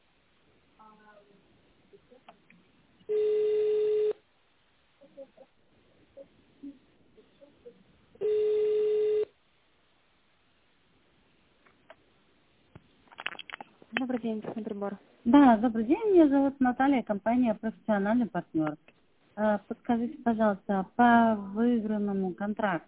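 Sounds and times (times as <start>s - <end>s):
faint low noise: 0.0s - 22.8s
telephone ringback tone while waiting for a secretary to answer: 3.1s - 4.2s, 8.2s - 9.3s
speech: 14.2s - 22.8s.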